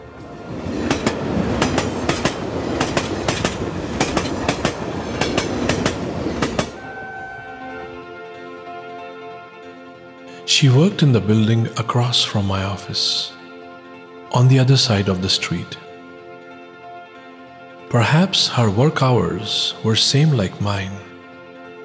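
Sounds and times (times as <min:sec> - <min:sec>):
train rumbling along the rails: 0:00.0 - 0:08.0
clickety-clack of train wheels crossing track joints: 0:00.8 - 0:06.8
speech: 0:10.6 - 0:13.4, 0:14.3 - 0:15.8, 0:17.9 - 0:21.1.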